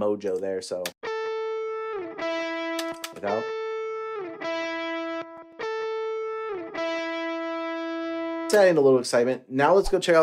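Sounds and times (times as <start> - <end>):
speech: 0.0 - 1.0, 3.2 - 3.6, 8.5 - 10.2
clean electric guitar lead played without a saturation plugin: 1.0 - 9.0.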